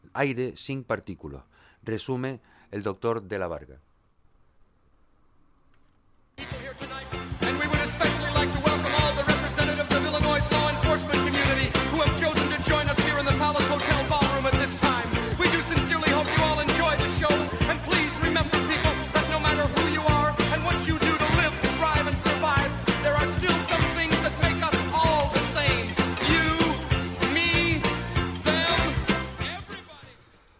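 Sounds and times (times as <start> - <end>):
speech: 0.2 - 3.9
upbeat rhythm and blues song with singer and full band: 6.4 - 30.5.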